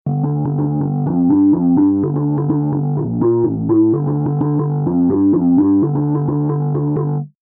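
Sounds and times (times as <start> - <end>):
vintage wah stick: 0.1 - 7.2.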